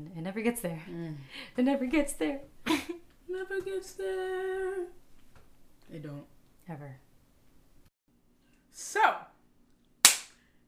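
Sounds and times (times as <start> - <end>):
speech: 0.0 - 2.5, 3.3 - 5.0, 5.9 - 7.0, 8.8 - 9.3
loud sharp hand clap: 10.0 - 10.4.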